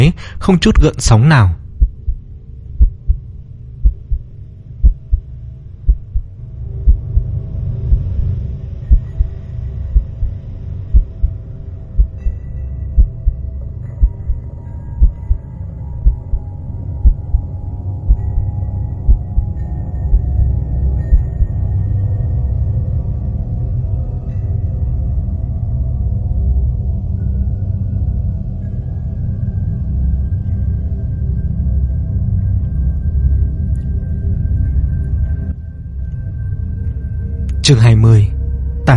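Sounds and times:
speech: 0:00.1 - 0:01.6, 0:37.7 - 0:38.9
continuous deep hum and rumble: 0:01.6 - 0:37.6
steady heartbeat sound effect: 0:01.7 - 0:02.2, 0:02.8 - 0:03.2, 0:03.8 - 0:08.3, 0:08.9 - 0:12.3, 0:12.9 - 0:13.4, 0:14.0 - 0:15.4, 0:16.0 - 0:17.5, 0:18.1 - 0:20.4, 0:21.1 - 0:21.6.

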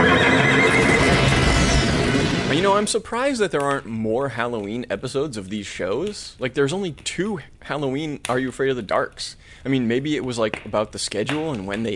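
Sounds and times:
horse neighing: 0:00.0 - 0:01.5
speech: 0:02.8 - 0:11.9.

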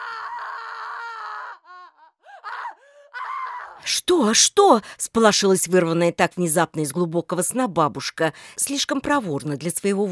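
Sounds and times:
child screaming in a nursery at night: 0:00.0 - 0:03.8
speech: 0:03.9 - 0:10.0.

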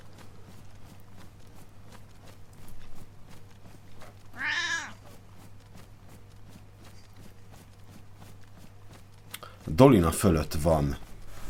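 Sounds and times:
cat meowing: 0:04.4 - 0:05.0
speech: 0:09.8 - 0:11.0.

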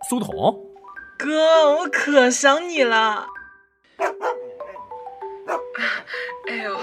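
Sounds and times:
speech: 0:00.1 - 0:03.4, 0:05.8 - 0:06.8
dog barking: 0:04.0 - 0:04.8, 0:05.4 - 0:05.7.

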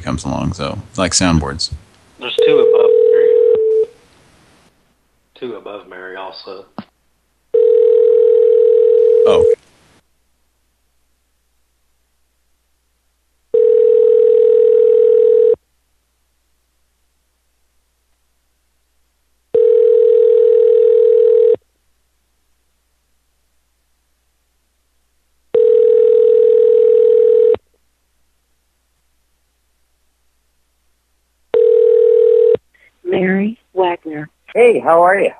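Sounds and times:
speech: 0:00.1 - 0:03.0, 0:05.4 - 0:06.9, 0:34.6 - 0:35.3
telephone line ringback tone before voicemail: 0:02.4 - 0:03.9, 0:07.5 - 0:09.6, 0:13.5 - 0:15.6, 0:19.5 - 0:21.6, 0:25.5 - 0:27.6, 0:31.5 - 0:32.6.

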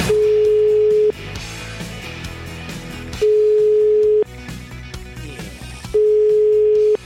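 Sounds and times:
telephone ringback tones of an outgoing call: 0:00.1 - 0:01.2, 0:03.2 - 0:04.3, 0:06.0 - 0:07.0.

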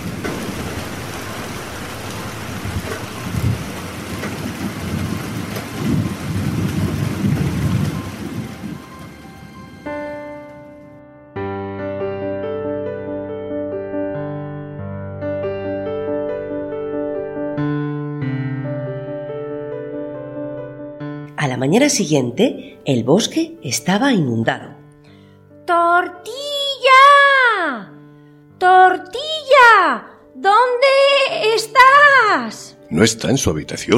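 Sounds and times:
low rumbling thunder: 0:00.0 - 0:10.5
heavy rain over a forest: 0:00.0 - 0:10.8
music: 0:07.6 - 0:33.9
speech: 0:21.6 - 0:24.7, 0:33.0 - 0:33.9.

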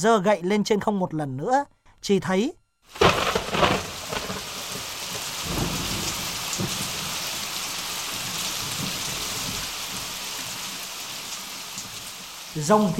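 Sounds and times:
speech: 0:00.0 - 0:03.9, 0:12.6 - 0:12.9
thunder in a storm sound effect: 0:02.9 - 0:10.8
heavy rain pouring in a storm sound effect: 0:02.9 - 0:12.9.

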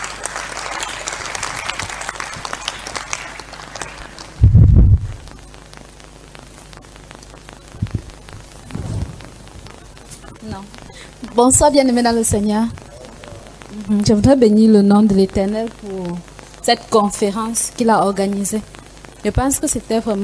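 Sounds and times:
congregation applauding at a church conference: 0:00.0 - 0:04.8
soft bumps: 0:07.8 - 0:09.7
loud low thump: 0:08.6 - 0:09.4
speech: 0:11.4 - 0:12.8, 0:13.9 - 0:20.2.

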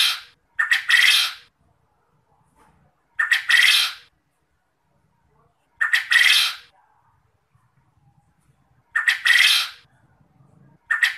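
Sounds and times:
quail calling: 0:00.0 - 0:01.5, 0:03.2 - 0:04.1, 0:05.8 - 0:06.7, 0:08.9 - 0:09.9, 0:10.8 - 0:11.1.

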